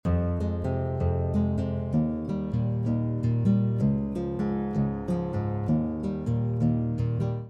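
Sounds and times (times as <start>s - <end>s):
guitar playing in E-flat major: 0.0s - 7.4s.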